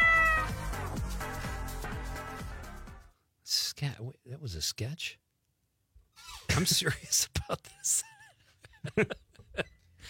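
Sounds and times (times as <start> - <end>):
cat meowing: 0.0 - 0.6
steady thumping music beat: 0.0 - 3.0
speech: 3.8 - 5.3, 6.6 - 8.2, 8.8 - 10.0.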